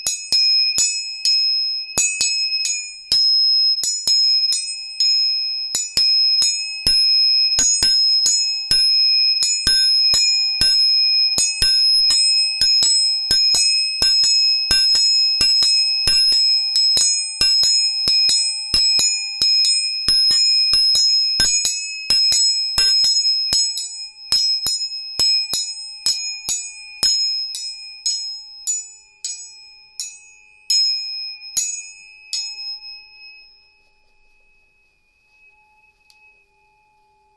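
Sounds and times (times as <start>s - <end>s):
three tuning forks ringing: 0.0s - 37.2s.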